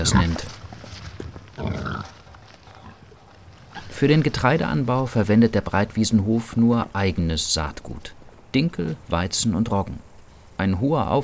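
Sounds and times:
farm pig with outdoor access grunting: 0:00.0 - 0:00.5, 0:01.6 - 0:04.0
speech: 0:00.0 - 0:00.6, 0:04.0 - 0:11.2
pig snuffling and shuffling: 0:00.0 - 0:10.6
steady outdoor background: 0:00.0 - 0:11.2.

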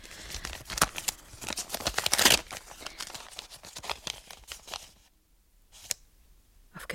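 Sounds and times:
crisp paper rustling and crinkling: 0:00.0 - 0:05.1, 0:05.7 - 0:06.0
paper envelope being torn open in a bedroom: 0:00.0 - 0:05.1.

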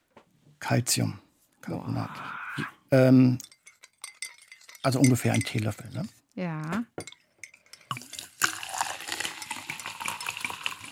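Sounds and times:
speech: 0:00.6 - 0:03.5, 0:04.8 - 0:07.2
bottle clinking against a glass: 0:03.2 - 0:06.1, 0:06.9 - 0:10.8
sparkling mineral water poured from a 0.75-litre bottle into a glass: 0:07.6 - 0:10.9
dense fizzing crackle of sparkling mineral water bubbles: 0:07.9 - 0:10.9.

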